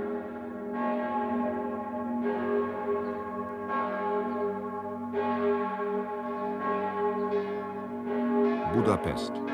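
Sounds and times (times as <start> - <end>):
church bells of St. Peter in Zürich ringing a peal: 0.0 - 9.5
speech: 8.8 - 9.5.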